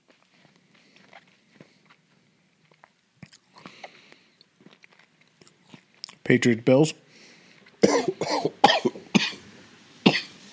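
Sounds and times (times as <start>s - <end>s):
speech: 6.3s - 7.0s
harsh coughing after inhaling smoke while blowing smoke rings: 7.8s - 9.4s, 10.0s - 10.3s.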